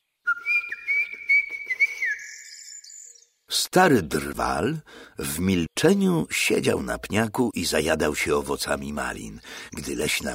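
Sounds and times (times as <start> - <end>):
blackbird whistling: 0.2 - 3.3
speech: 3.7 - 10.3.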